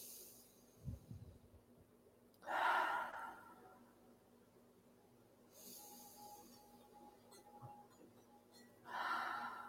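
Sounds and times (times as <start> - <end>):
slow deep cleansing breaths in through the nose, out through the mouth: 0.0 - 1.4, 2.4 - 3.9, 5.5 - 6.8, 8.8 - 9.6.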